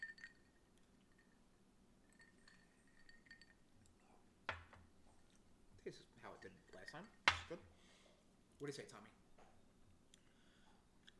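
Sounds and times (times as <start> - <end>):
glasses of grenadine and Aperol cocktail clinking in a toast: 0.0 - 1.3, 2.1 - 3.7, 6.3 - 7.6
speech: 5.9 - 7.8, 8.6 - 9.2.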